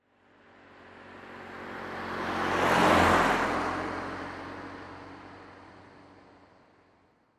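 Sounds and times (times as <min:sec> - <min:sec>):
1996 Saturn SL2 car driving by left to right at 25 mph: 0:01.4 - 0:04.4.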